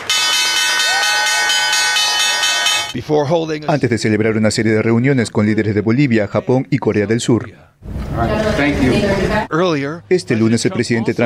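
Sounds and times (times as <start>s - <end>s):
stock exchange opening bell ringing: 0.0s - 3.0s
speech: 3.0s - 11.2s.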